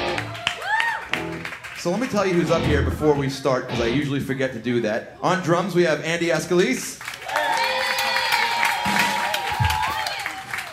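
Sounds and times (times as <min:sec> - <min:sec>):
scattered clapping: 0:00.0 - 0:02.7, 0:07.0 - 0:10.7
crowd yelling and cheering: 0:00.0 - 0:04.0, 0:07.1 - 0:10.7
speech: 0:01.8 - 0:07.1.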